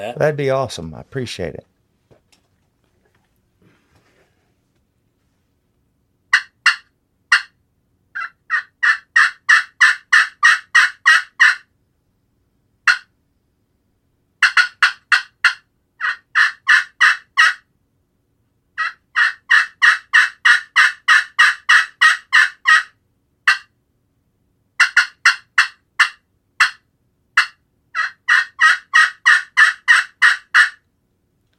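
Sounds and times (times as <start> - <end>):
speech: 0.0 - 1.7
aggressive turkey hen calling with yelps and cuts, made by a hunter: 6.3 - 7.6, 8.2 - 11.7, 12.9 - 13.1, 14.4 - 17.6, 18.8 - 23.7, 24.8 - 26.8, 27.4 - 30.8.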